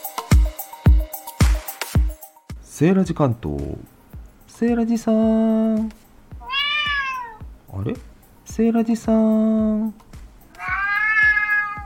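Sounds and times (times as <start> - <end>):
speech: 2.8 - 3.9, 4.6 - 6.0, 7.8 - 10.0
person imitating a cat meow: 6.4 - 7.4, 10.6 - 11.8.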